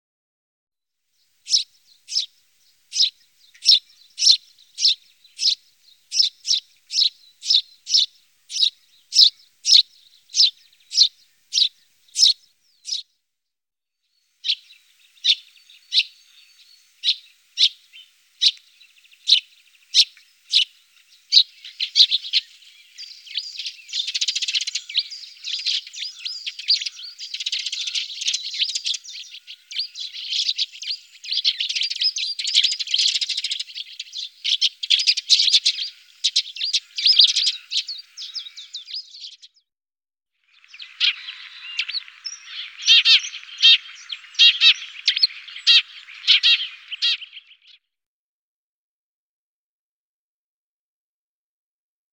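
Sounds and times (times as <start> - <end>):
Feldsperling tree sparrow calling: 1.3 - 13.1, 14.2 - 39.6, 40.4 - 47.8.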